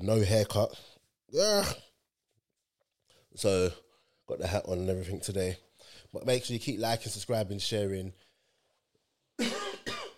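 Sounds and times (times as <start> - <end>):
speech: 0.0 - 1.9, 3.4 - 8.2, 9.4 - 9.6
loud harsh coughs: 9.4 - 10.1.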